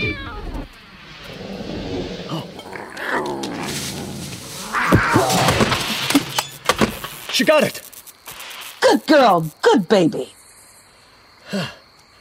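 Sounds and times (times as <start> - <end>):
panther growling and snarling under trees as it attacks a drone: 1.3 - 6.0
speech: 7.4 - 7.9, 9.0 - 10.4, 11.5 - 11.8.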